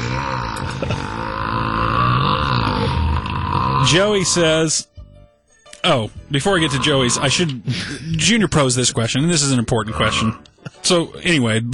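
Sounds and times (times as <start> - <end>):
long loud guttural burp: 0.0 - 4.5, 6.6 - 7.6, 9.7 - 10.6
speech: 3.9 - 4.9, 5.8 - 11.7.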